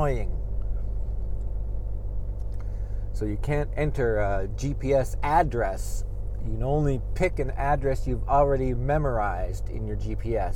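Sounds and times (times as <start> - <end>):
speech: 0.0 - 0.4, 3.2 - 10.5
engine rumble in the cabin of a moving truck: 0.0 - 10.5.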